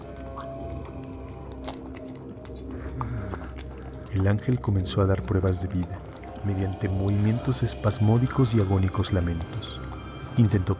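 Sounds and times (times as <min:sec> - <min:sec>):
low rumbling background: 0:00.0 - 0:10.7
wet biting and chewing of flesh: 0:00.0 - 0:10.7
speech: 0:04.2 - 0:09.8, 0:10.4 - 0:10.7.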